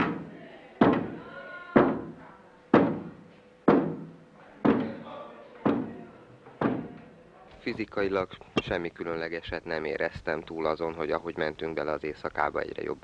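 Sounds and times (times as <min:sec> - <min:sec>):
faint murmur of voices: 0:00.0 - 0:09.7
dull solid knocks: 0:02.7 - 0:05.0, 0:05.6 - 0:06.0, 0:06.6 - 0:07.0
speech: 0:07.6 - 0:13.0.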